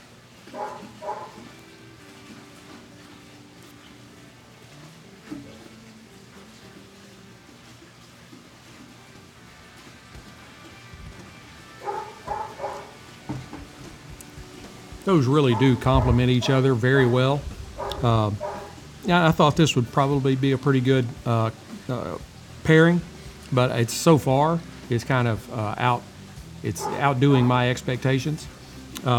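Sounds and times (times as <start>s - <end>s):
dog barking: 0.5s - 1.5s, 11.8s - 13.0s, 15.5s - 16.6s, 17.8s - 18.8s, 26.8s - 27.4s
speech: 15.1s - 18.5s, 19.1s - 29.1s.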